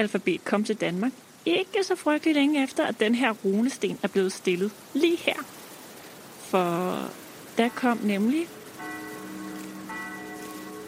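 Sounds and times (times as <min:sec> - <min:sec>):
speech: 0:00.0 - 0:05.6, 0:06.5 - 0:08.6
steady hiss: 0:00.0 - 0:10.8
church bells ringing in Denmark: 0:07.6 - 0:10.8.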